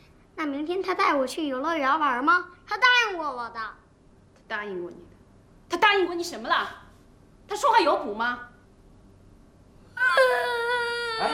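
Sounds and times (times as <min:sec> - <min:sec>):
speech: 0:00.4 - 0:03.8, 0:04.5 - 0:05.1, 0:05.7 - 0:06.8, 0:07.5 - 0:08.5
young child crying: 0:10.0 - 0:11.3.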